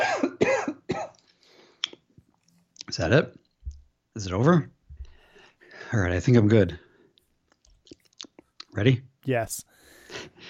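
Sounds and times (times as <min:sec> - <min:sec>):
person in a coughing fit: 0:00.0 - 0:01.2
speech: 0:02.9 - 0:03.4, 0:04.2 - 0:04.8, 0:05.8 - 0:06.8, 0:08.8 - 0:09.8.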